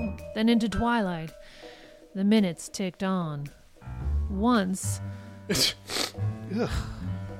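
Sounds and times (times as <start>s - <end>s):
speech: 0.4s - 3.6s, 4.3s - 7.0s
person sneezing: 5.5s - 6.8s
person groaning: 6.5s - 7.1s.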